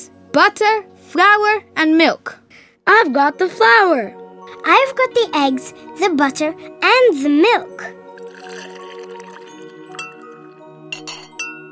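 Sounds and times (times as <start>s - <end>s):
speech: 0.4s - 8.0s
utensil clinking against the side of a bowl: 10.9s - 11.6s.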